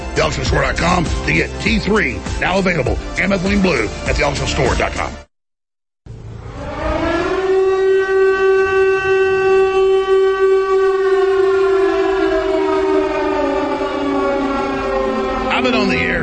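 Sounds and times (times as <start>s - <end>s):
speech: 0.2s - 5.3s
air raid siren wailing: 6.1s - 16.2s.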